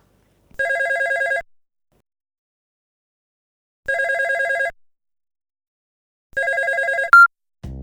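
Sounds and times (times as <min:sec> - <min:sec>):
telephone ringing in warbling electronic bursts: 0:00.6 - 0:01.4, 0:03.9 - 0:04.7, 0:06.4 - 0:07.3.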